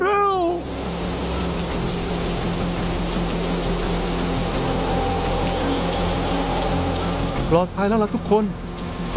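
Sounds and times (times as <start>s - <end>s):
heavy rain pouring: 0.1s - 9.1s
stormy surf breaking on the shore: 0.6s - 9.1s
speech: 7.5s - 8.6s.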